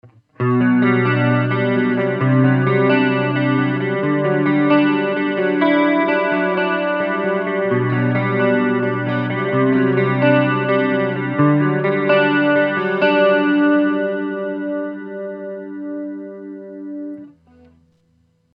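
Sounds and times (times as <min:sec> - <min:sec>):
clean guitar with chorus effect through amplifier: 0:00.0 - 0:18.5.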